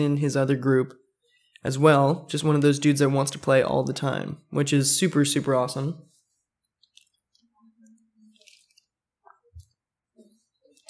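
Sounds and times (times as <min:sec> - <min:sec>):
speech: 0:00.0 - 0:01.0, 0:01.6 - 0:06.1
person drinking water: 0:08.2 - 0:09.8.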